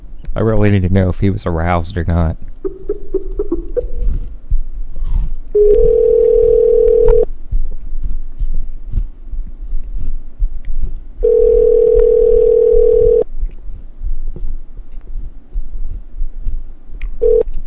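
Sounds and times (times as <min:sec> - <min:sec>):
low faint thumping rumble: 0:00.0 - 0:17.6
speech: 0:00.4 - 0:02.8
telephone dial tone: 0:05.6 - 0:07.3, 0:11.2 - 0:13.2, 0:17.2 - 0:17.6.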